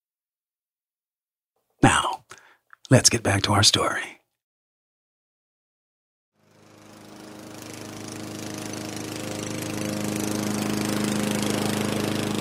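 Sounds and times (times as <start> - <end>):
speech: 1.8 - 2.1, 2.9 - 4.2
lawn mower engine running: 6.4 - 12.3.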